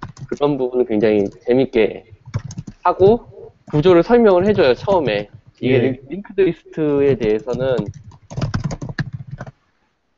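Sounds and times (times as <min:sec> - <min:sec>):
typing on a computer keyboard: 0:00.0 - 0:01.5, 0:02.1 - 0:05.6, 0:07.0 - 0:09.6
speech: 0:00.3 - 0:02.2, 0:02.8 - 0:08.0.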